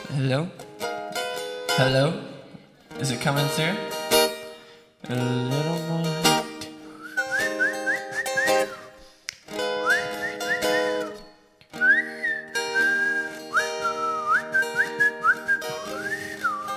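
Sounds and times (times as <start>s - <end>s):
speech: 0.1s - 0.7s, 1.7s - 2.3s, 3.0s - 3.9s, 5.1s - 6.3s
person whistling a wavering tune: 6.9s - 9.1s, 9.7s - 16.7s.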